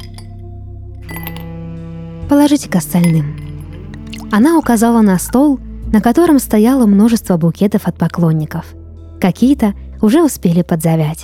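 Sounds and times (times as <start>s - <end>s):
whiskey pouring into a glass in an apartment: 0.0s - 0.2s, 3.1s - 6.4s
bright glass clink: 0.0s - 0.4s, 1.1s - 1.6s, 3.0s - 6.4s
speech: 2.3s - 3.4s, 4.3s - 11.2s.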